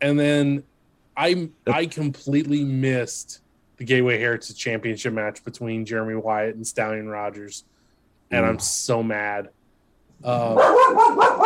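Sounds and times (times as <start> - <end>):
speech: 0.0 - 7.7, 8.3 - 9.6, 10.2 - 11.4
dog barking: 10.5 - 11.4.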